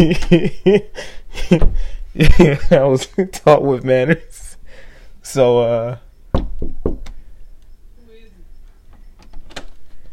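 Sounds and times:
speech: 0:00.0 - 0:04.4, 0:05.2 - 0:06.0
knocking on a door: 0:06.3 - 0:07.2.

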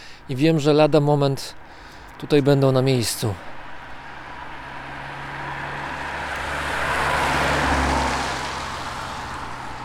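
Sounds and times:
speech: 0:00.3 - 0:01.6, 0:02.2 - 0:03.5
heavy fire brigade vehicle driving past: 0:04.0 - 0:09.8.

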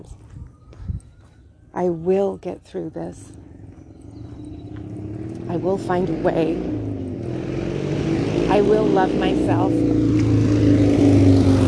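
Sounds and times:
speech: 0:01.8 - 0:03.4, 0:05.5 - 0:06.8, 0:08.5 - 0:10.4
motorcycle engine droning: 0:03.2 - 0:11.6.

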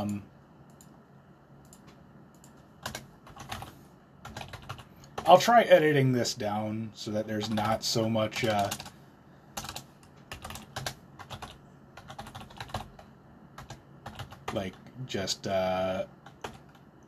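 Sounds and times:
speech: 0:00.0 - 0:00.3, 0:05.3 - 0:08.9, 0:14.6 - 0:16.2
typing on a computer keyboard: 0:01.6 - 0:05.4, 0:07.4 - 0:08.9, 0:09.6 - 0:14.8, 0:16.2 - 0:16.9.

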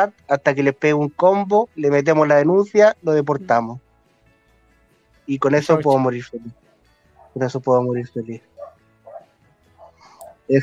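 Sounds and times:
speech: 0:00.0 - 0:03.8, 0:05.3 - 0:06.6, 0:07.4 - 0:08.5, 0:10.5 - 0:10.6
dogs barking: 0:05.8 - 0:07.6, 0:08.4 - 0:10.6.

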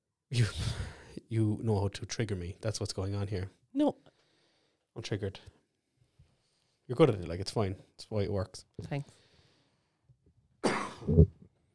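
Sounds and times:
speech: 0:00.3 - 0:04.0, 0:05.0 - 0:05.6, 0:06.9 - 0:09.2, 0:11.0 - 0:11.4
loud cough trailing into a rough throaty rasp: 0:10.6 - 0:11.3.

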